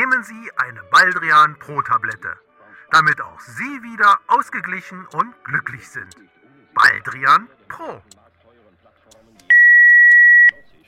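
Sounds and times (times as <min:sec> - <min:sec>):
speech: 0:00.2 - 0:08.2
faint voices murmuring: 0:05.2 - 0:10.8
single steady electronic telephone beep: 0:09.5 - 0:10.6.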